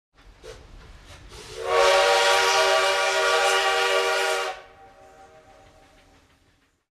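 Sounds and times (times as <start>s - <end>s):
train horn: 1.4s - 5.8s.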